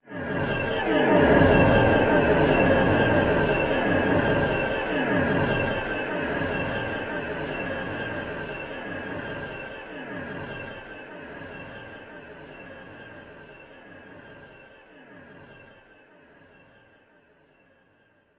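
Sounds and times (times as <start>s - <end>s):
atmospheric delay movement effect: 0.1s - 13.8s.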